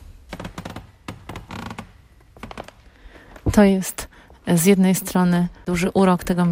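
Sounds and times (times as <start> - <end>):
wooden floor creaking and thudding underfoot in a quiet indoor hall: 0.0 - 3.9
speech: 3.6 - 6.4.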